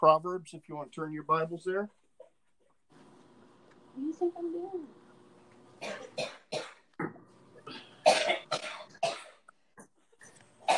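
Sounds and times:
speech: 0.0s - 2.0s, 4.0s - 5.0s, 5.8s - 6.6s
coughing fit: 5.8s - 10.7s.

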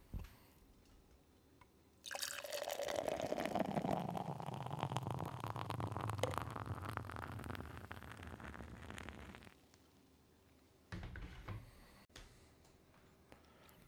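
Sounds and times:
blackberry ale pouring into a glass: 2.0s - 9.5s.

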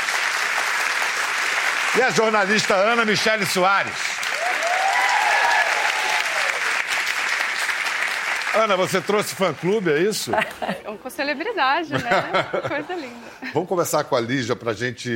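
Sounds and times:
studio audience applauding: 0.0s - 10.3s
speech: 2.0s - 4.2s, 8.5s - 15.1s
laughter: 10.0s - 11.0s, 11.8s - 13.7s.

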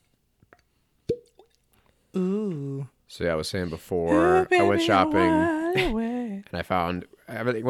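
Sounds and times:
cork popping out of a whiskey bottle: 1.1s - 1.5s
speech: 2.1s - 7.6s.

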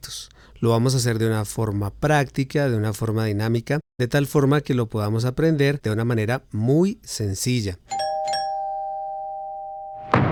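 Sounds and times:
speech: 0.6s - 8.0s
doorbell chiming: 7.9s - 10.2s.

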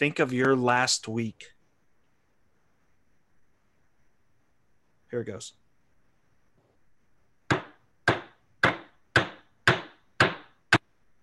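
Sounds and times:
speech: 0.0s - 1.6s, 5.1s - 5.6s
hammer striking: 7.5s - 10.8s.

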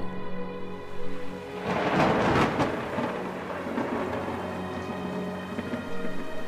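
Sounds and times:
steady rain hissing in a thunderstorm: 0.0s - 6.4s
loud thunder crash booming and rumbling: 1.6s - 6.0s.

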